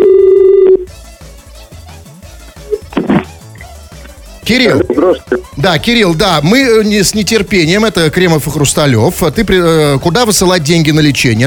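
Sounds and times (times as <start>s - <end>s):
telephone call tone as a flat steady buzz: 0.0s - 0.9s
quieter mixed sounds: 4.5s - 5.6s
speech: 4.5s - 11.4s.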